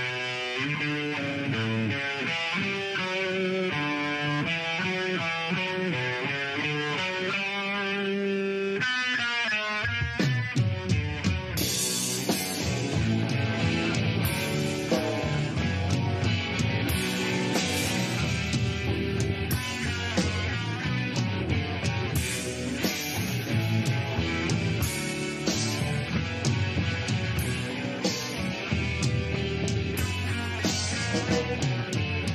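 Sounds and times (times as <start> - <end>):
live punk rock concert with distorted guitars and pounding drums: 0.0 - 32.3.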